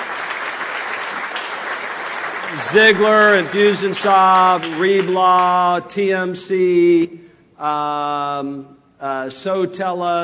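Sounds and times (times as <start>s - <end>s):
audience at a marketing and sales technology event applauding: 0.0s - 5.8s
speech: 2.5s - 10.2s.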